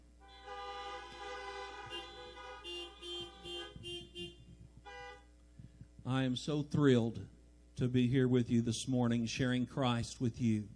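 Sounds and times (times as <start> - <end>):
many car horns honking: 0.2 - 5.4
speech: 6.1 - 10.7.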